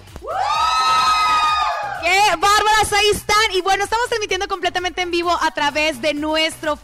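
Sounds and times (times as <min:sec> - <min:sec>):
group of women screaming excitedly: 0:00.2 - 0:02.2
speech: 0:02.3 - 0:06.8.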